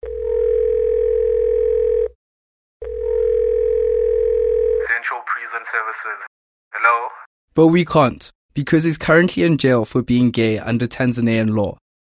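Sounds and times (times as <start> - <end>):
telephone dial tone while placing a call: 0.0 - 2.2, 2.8 - 4.8
voice speaking on the telephone line: 4.8 - 7.3
speech: 6.0 - 11.8.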